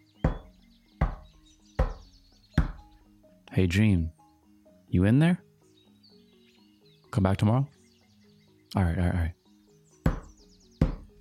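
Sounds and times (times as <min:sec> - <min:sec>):
faint chirping: 0:00.0 - 0:11.2
firm knocking on a door: 0:00.2 - 0:02.9, 0:10.0 - 0:11.1
speech: 0:03.6 - 0:04.2, 0:04.9 - 0:05.4, 0:07.2 - 0:07.8, 0:08.7 - 0:09.4.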